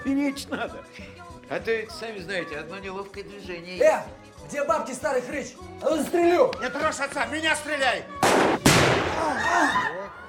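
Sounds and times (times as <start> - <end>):
speech: 0.0 - 10.0
firecracker bang set off by people celebrating: 8.2 - 9.4.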